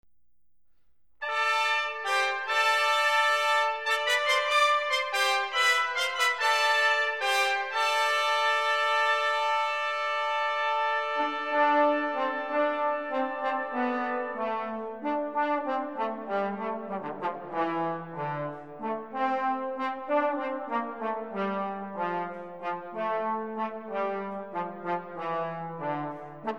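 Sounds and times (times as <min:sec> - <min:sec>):
brass ensemble playing: 0:01.2 - 0:26.5.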